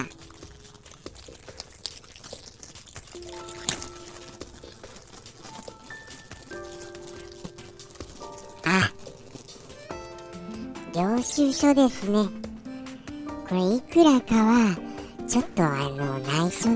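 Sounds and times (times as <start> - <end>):
plastic bag rustling and crinkling out of a torn-open envelope: 0.0 - 12.7
speech: 11.2 - 12.4, 13.5 - 16.7.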